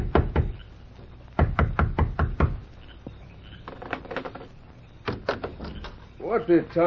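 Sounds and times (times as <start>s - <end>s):
loud knocking on the wooden door of a home: 0.0s - 0.6s, 1.4s - 2.6s
speech: 6.3s - 6.8s.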